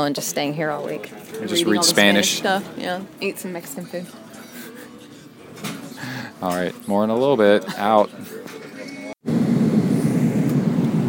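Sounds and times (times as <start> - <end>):
speech: 0.0 - 4.3, 6.4 - 8.6
cabin noise aboard a large Airbus airliner: 9.2 - 11.0.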